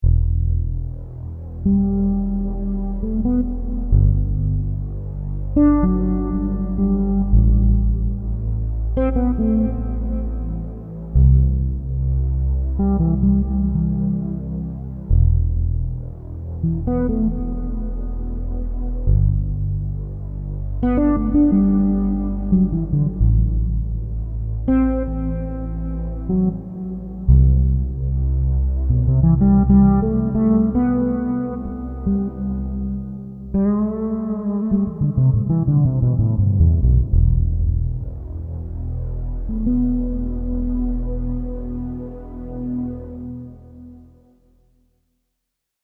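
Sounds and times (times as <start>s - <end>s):
fretless new age music: 0.0s - 44.9s.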